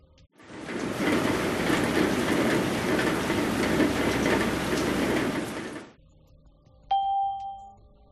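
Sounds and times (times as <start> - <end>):
steady dense rain pouring: 0.4 - 6.0
single clear electronic chime: 6.9 - 7.8.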